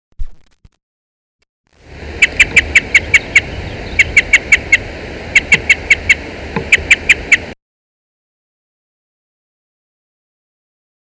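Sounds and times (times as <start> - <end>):
parrot crossbill chup calls of type D: 2.2 - 7.6.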